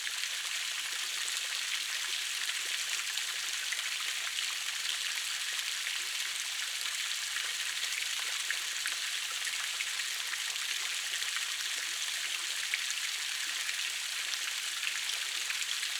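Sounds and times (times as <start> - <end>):
small fountain: 0.0 - 15.9.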